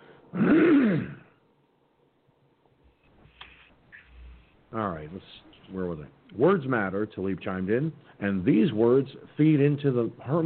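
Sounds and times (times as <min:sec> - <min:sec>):
speech: 0:00.3 - 0:01.1, 0:04.7 - 0:10.4
harsh raspy throat clearing from allergy-related phlegm: 0:00.3 - 0:01.4
faint small noises: 0:01.1 - 0:10.4.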